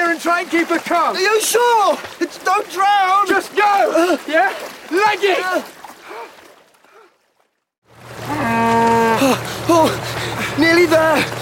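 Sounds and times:
speech: 0.2 - 5.7, 9.7 - 11.4
cow giving a long loud moo: 8.3 - 9.4.

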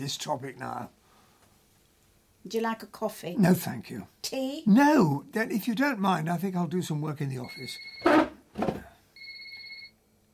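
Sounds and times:
speech: 0.0 - 1.0, 2.4 - 8.2
electronic two-tone telephone ring: 7.4 - 8.3, 9.2 - 10.0.

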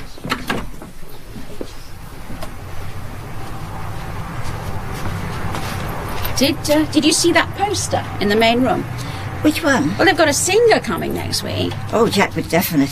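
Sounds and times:
door opening and shutting: 0.0 - 1.0
steady rumble: 0.7 - 12.9
faint shuffling: 0.8 - 12.9
indistinct voices: 1.8 - 12.9
speech: 6.4 - 12.9.

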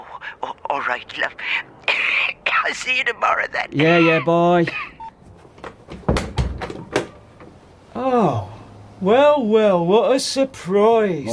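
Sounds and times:
speech: 0.8 - 1.9, 2.6 - 4.9, 8.0 - 11.3
front door latch rattling: 5.6 - 7.6.

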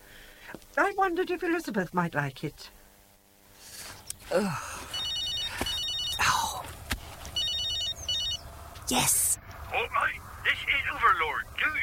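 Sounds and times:
faint low hum: 0.0 - 11.8
speech: 0.8 - 2.8, 4.3 - 4.7, 8.9 - 11.8
mobile phone ringtone with warbling electronic melody: 4.9 - 6.6, 7.4 - 8.5.

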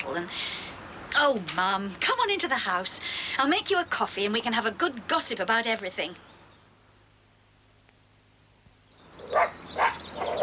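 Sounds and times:
faint hum: 0.0 - 10.4
speech: 0.2 - 6.3
dog barking: 9.2 - 10.4.

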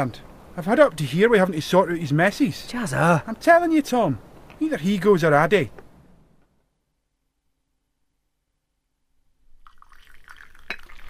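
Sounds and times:
speech: 0.0 - 5.8
liquid poured into a cup: 9.6 - 11.0.

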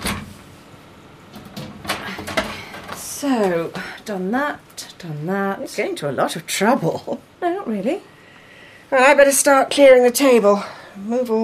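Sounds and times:
oven door swinging shut: 1.3 - 3.0
speech: 3.2 - 8.1, 8.9 - 11.4.

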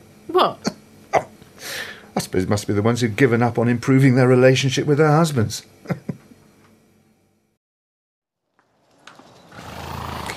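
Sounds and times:
speech: 0.3 - 6.1
horse whinnying: 9.5 - 10.3.

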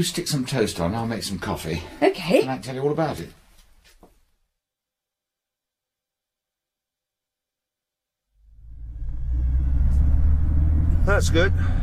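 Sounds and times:
speech: 0.0 - 3.4, 11.2 - 11.8
engine and tyre drone inside a moving car: 8.6 - 11.8.

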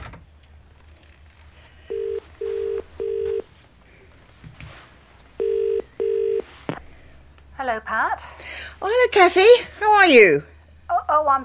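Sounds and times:
telephone dialing tones: 1.9 - 3.5, 5.4 - 6.4
speech: 7.7 - 10.5, 11.1 - 11.4.

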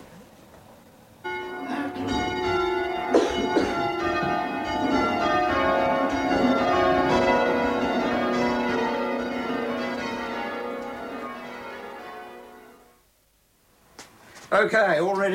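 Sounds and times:
church bells being rung up: 1.2 - 13.0
speech: 14.6 - 15.3.

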